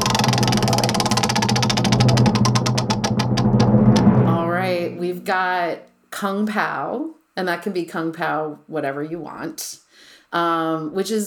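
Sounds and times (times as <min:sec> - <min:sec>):
prize wheel spinning with rapid ticking: 0:00.0 - 0:04.1
steady low hum: 0:00.0 - 0:05.4
speech: 0:05.3 - 0:11.2.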